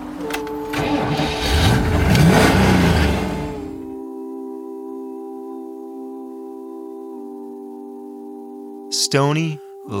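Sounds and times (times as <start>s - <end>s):
Cyclone car engine cranked, started and revving: 0.0s - 3.9s
speech: 9.1s - 9.9s.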